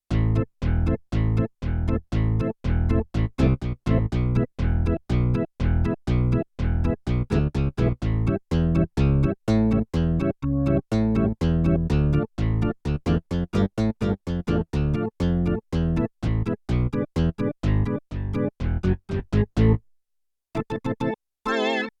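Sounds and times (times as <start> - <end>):
sampler bass sound: 0.1 - 19.8
sampler organ sound: 8.3 - 19.7, 20.6 - 21.9.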